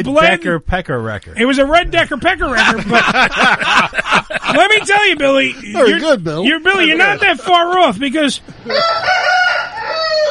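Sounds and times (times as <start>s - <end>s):
speech: 0.0s - 9.4s
laughter: 2.0s - 7.9s
rooster crowing: 8.7s - 10.2s.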